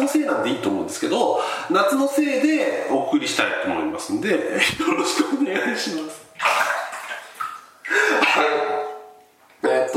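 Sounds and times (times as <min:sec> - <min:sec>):
speech: 0:00.1 - 0:06.5
water splashing in a bathtub with a person sitting in it: 0:01.8 - 0:09.4.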